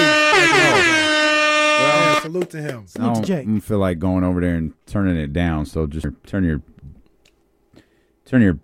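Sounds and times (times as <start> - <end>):
air horn sound effect blast: 0.0 - 2.3
speech: 2.5 - 7.0, 8.3 - 8.6.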